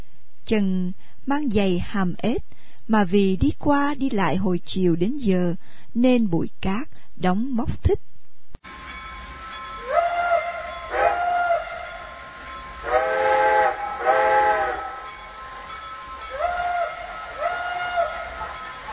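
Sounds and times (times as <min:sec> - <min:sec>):
speech: 0:00.5 - 0:08.8
steam train whistle as the train pulls into a station: 0:08.7 - 0:18.9.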